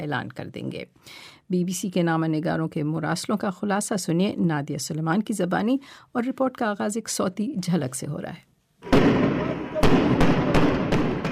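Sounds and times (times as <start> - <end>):
speech: 0.0 - 9.2
tear gas shells fired by an army during protests: 8.8 - 11.3.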